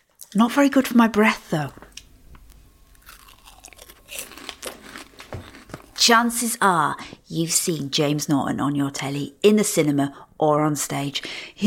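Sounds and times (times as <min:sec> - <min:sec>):
speech: 0:00.3 - 0:01.8, 0:06.1 - 0:11.6
crunching bites of a crispy snack dipped in spicy tomato sauce: 0:02.5 - 0:06.0.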